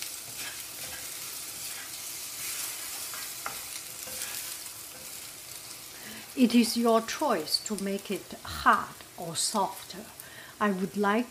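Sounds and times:
frying food sizzling: 0:00.0 - 0:11.2
bamboo spatula scraping and tapping while stirring frying food: 0:00.2 - 0:05.2
speech: 0:06.4 - 0:11.2.

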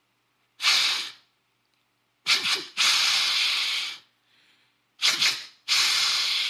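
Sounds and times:
deer snort-wheeze call blown through a hollow tube: 0:00.6 - 0:01.2, 0:02.3 - 0:04.1, 0:05.0 - 0:06.4.

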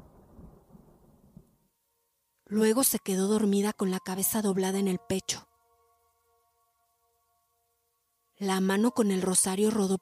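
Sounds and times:
distant rumbling thunder: 0:00.0 - 0:01.5
speech: 0:02.5 - 0:05.5, 0:08.4 - 0:10.0.

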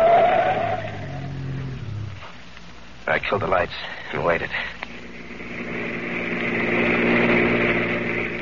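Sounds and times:
car tires squealing in a skid off the road: 0:00.0 - 0:01.6
car engine rumble at full throttle: 0:00.0 - 0:08.4
speech: 0:03.1 - 0:04.8.

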